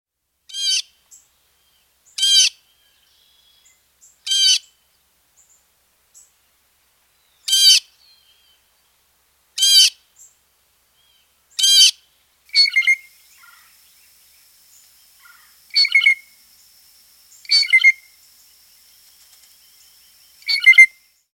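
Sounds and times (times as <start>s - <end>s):
blue jay calling: 0.5s - 1.0s, 2.1s - 4.8s, 7.3s - 8.6s, 9.6s - 10.3s, 11.0s - 21.2s.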